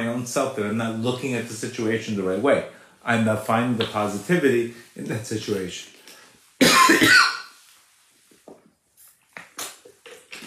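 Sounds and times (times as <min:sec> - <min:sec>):
speech: 0:00.2 - 0:05.9, 0:06.6 - 0:07.3
person coughing harshly: 0:06.6 - 0:07.5.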